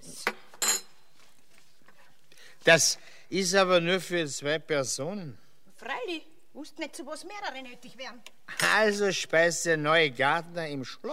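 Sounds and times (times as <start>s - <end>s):
plates being set down on a table being laid for a meal: 0.3s - 1.1s
speech: 2.6s - 5.4s, 6.1s - 11.1s.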